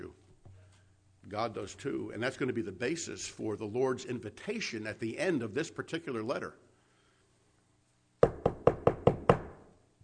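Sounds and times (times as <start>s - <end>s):
speech: 1.3s - 6.7s
firm knocks on a wooden door: 8.2s - 9.6s.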